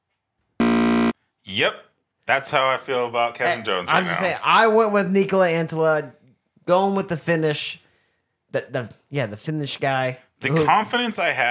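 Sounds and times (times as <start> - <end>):
harsh electronic buzzer blast: 0.6 - 1.2
speech: 1.4 - 7.8, 8.5 - 11.4.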